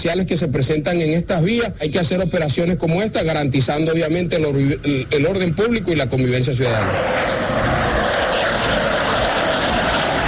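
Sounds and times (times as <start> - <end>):
speech: 0.0 - 7.8
military jet roaring overhead: 5.4 - 10.2.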